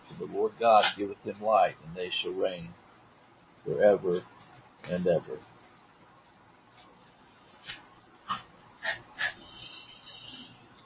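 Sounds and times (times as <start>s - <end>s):
speech: 0.2s - 2.8s, 3.6s - 5.5s
small dog snorting: 7.6s - 10.6s.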